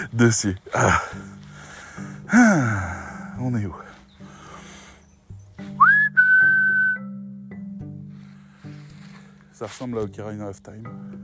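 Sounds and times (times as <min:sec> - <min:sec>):
speech: 0:00.0 - 0:01.3, 0:02.3 - 0:03.8, 0:09.6 - 0:11.2
soft low musical background: 0:00.0 - 0:11.2
person whistling a short melody: 0:05.6 - 0:07.4.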